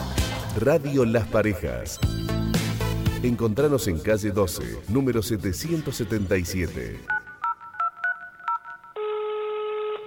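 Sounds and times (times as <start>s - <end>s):
speech: 0.6s - 2.5s, 3.2s - 7.2s
phone keypad dialing beeps: 7.1s - 9.0s
steady ringback-style tone: 7.1s - 9.9s.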